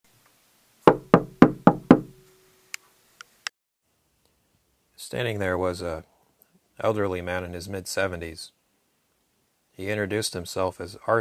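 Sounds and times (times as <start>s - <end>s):
knocking on solid wooden front door of a house: 0.9s - 2.2s
speech: 5.0s - 6.1s, 6.8s - 8.6s, 9.8s - 11.2s.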